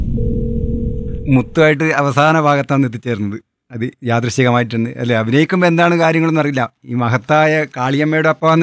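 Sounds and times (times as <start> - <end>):
faint tone: 0.1 - 1.6
speech: 1.3 - 8.6.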